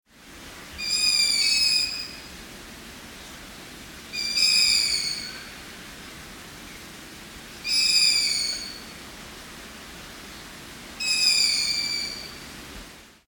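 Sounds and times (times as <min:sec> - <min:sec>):
young long-eared owls calling: 0:00.8 - 0:02.3, 0:04.1 - 0:05.5, 0:07.6 - 0:08.9, 0:11.0 - 0:12.4.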